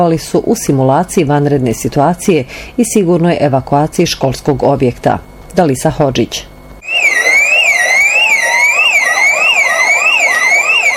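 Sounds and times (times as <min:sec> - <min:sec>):
speech: 0:00.0 - 0:06.5
fast warbling alarm tone: 0:06.8 - 0:10.9
wailing electronic school evacuation alarm at a primary school: 0:06.8 - 0:10.9.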